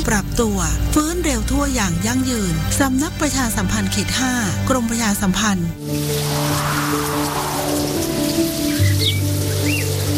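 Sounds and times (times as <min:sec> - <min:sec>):
speech: 0:00.1 - 0:07.5
steady rain pattering: 0:05.9 - 0:10.1.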